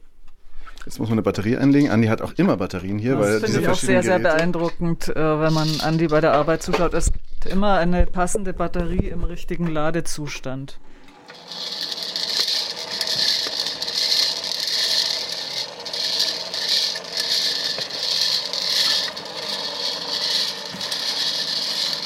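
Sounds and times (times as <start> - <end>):
speech: 0.8 - 11.7
lottery balls tumbling and clattering in the drum: 5.5 - 7.1, 11.3 - 22.0
small battery-powered lottery ball drum whirring as it rotates: 10.9 - 22.0.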